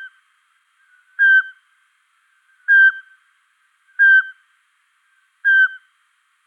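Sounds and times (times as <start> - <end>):
Eurasian pygmy owl whistled hoots in Luxembourg: 1.2 - 1.6, 2.7 - 3.2, 4.0 - 4.4, 5.4 - 5.9.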